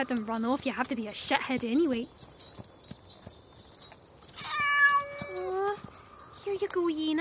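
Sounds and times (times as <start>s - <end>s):
speech: 0.0s - 2.7s, 6.5s - 7.2s
cat meowing: 4.4s - 5.8s.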